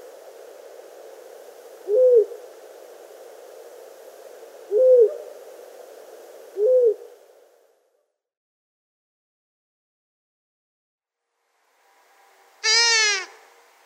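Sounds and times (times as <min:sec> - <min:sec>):
soft hiss: 0:00.0 - 0:08.0, 0:11.2 - 0:13.8
long-eared owl hooting: 0:01.8 - 0:02.4, 0:04.6 - 0:05.3, 0:06.5 - 0:07.1, 0:12.6 - 0:13.4.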